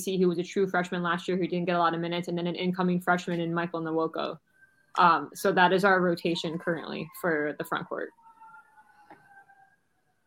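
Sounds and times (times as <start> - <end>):
speech: 0.0 - 8.2
distant siren wailing through an open window: 4.2 - 10.2.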